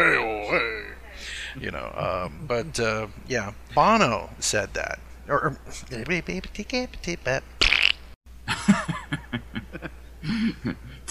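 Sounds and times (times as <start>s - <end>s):
speech: 1.6s - 7.6s, 10.3s - 11.0s
laughter: 2.0s - 3.0s, 8.5s - 11.0s
mouth imitation of a fart blown as a raspberry: 7.6s - 8.1s.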